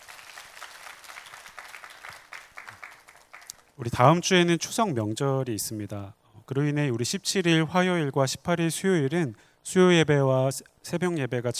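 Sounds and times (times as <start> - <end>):
audience applauding in a reverberant room: 0.0 - 3.7
speech: 3.8 - 11.5.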